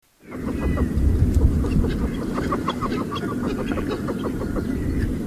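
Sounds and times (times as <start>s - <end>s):
rosybill pochard calling: 0.2s - 1.0s, 1.6s - 5.1s.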